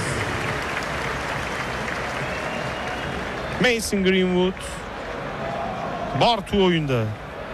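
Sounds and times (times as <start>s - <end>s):
stadium crowd applause for a football player leaving the match: 0.0s - 5.7s
speech: 3.6s - 4.8s, 6.2s - 7.2s.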